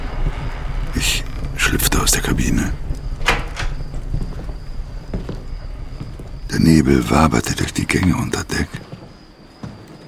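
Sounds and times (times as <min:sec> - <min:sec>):
low steady rumble: 0:00.0 - 0:07.7
old wooden ship timbers creaking and knocking: 0:00.0 - 0:10.0
speech: 0:01.0 - 0:02.9, 0:06.6 - 0:08.8.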